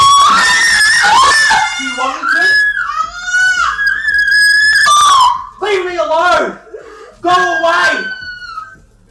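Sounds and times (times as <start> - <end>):
woman and children screaming: 0.0 - 5.6, 7.2 - 8.8.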